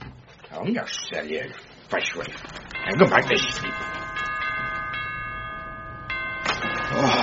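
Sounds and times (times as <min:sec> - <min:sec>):
speech: 0:00.6 - 0:04.0
doorbell at the front door chiming: 0:02.6 - 0:07.2.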